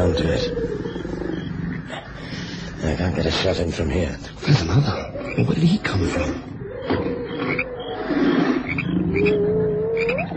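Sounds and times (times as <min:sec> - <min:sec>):
speech: 0:00.0 - 0:01.2, 0:02.8 - 0:06.5
striped hyena growling and whining: 0:00.0 - 0:02.8, 0:05.0 - 0:10.3
lion growling and snarling: 0:00.0 - 0:10.3.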